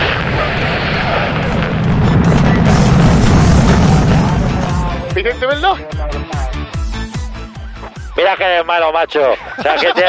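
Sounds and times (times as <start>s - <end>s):
grenade explosion: 0.0s - 5.7s
speech: 5.4s - 6.0s, 8.2s - 10.0s
laughter: 9.2s - 10.0s.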